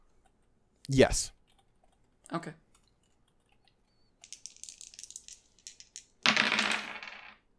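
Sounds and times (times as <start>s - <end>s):
speech: 0.9s - 1.4s, 2.3s - 2.6s
two six-sided dice rolled on a table: 3.6s - 7.5s.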